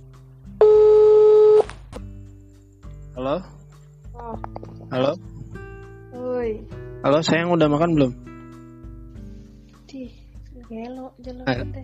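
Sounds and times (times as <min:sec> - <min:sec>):
telephone ringing tone while dialing a prank phone call: 0:00.6 - 0:01.6
speech: 0:03.2 - 0:03.6, 0:04.2 - 0:05.3, 0:06.2 - 0:08.3, 0:09.9 - 0:11.8.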